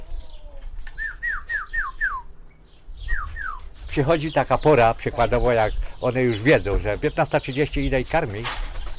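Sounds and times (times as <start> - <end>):
bird calling at a feeder: 1.0 - 3.7
speech: 3.9 - 8.6.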